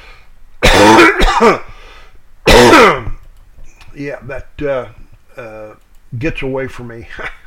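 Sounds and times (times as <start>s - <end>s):
person coughing and clearing their throat away from the microphone: 0.6s - 1.7s, 2.5s - 3.2s
speech: 1.4s - 1.7s, 4.0s - 7.4s.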